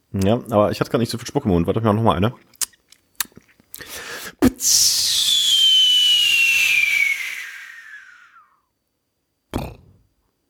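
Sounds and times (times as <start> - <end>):
speech: 0.1 - 2.6
mouth imitation of a whistling firework rocket: 4.3 - 8.5.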